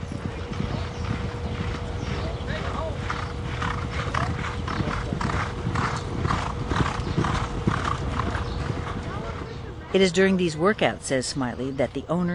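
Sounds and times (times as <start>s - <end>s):
racehorse hoofs thudding on thick dirt track: 0.0s - 9.7s
racehorses' strained breathing: 0.0s - 10.8s
steady hum: 0.0s - 12.3s
speech: 10.0s - 12.3s.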